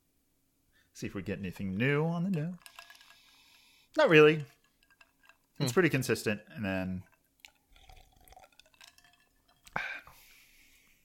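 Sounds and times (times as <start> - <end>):
speech: 1.0 - 2.8, 4.0 - 4.6, 5.6 - 7.1
small clinks: 1.6 - 10.2
liquid pouring into a glass: 2.3 - 10.2
faint drips: 2.3 - 11.0.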